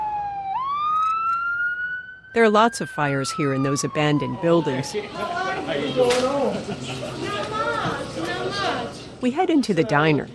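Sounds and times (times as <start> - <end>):
fire engine siren passing by: 0.0 - 6.4
speech: 2.3 - 7.6, 8.2 - 10.3
laughter: 5.1 - 8.9.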